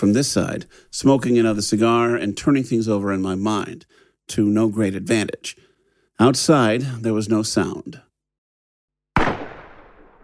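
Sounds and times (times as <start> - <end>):
speech: 0.0 - 8.1
gunshot fired inside a house: 9.2 - 10.2.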